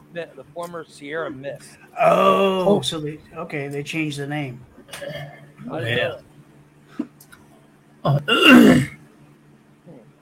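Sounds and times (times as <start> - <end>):
speech: 0.1 - 6.3, 8.0 - 9.0
person clearing throat after drinking lemon-lime soda: 4.9 - 5.4, 8.1 - 9.0.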